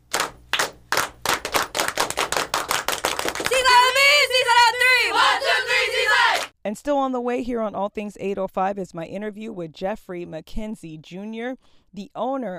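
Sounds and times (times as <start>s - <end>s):
small group applauding a youth softball team: 0.0s - 6.5s
people cheering: 3.1s - 6.5s
speech: 6.7s - 12.5s.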